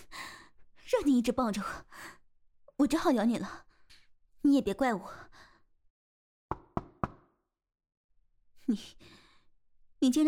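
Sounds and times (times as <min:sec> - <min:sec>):
speech: 0:01.0 - 0:01.9, 0:02.8 - 0:03.7, 0:04.4 - 0:05.4, 0:08.7 - 0:09.2, 0:10.0 - 0:10.2
knocking on a door from outside: 0:06.5 - 0:07.3.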